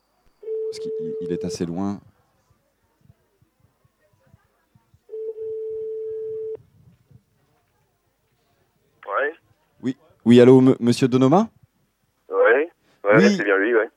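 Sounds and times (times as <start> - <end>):
telephone ringing tone on the line: 0.4 - 1.7, 5.1 - 6.6
speech: 0.7 - 2.1, 9.8 - 11.6, 13.2 - 13.9.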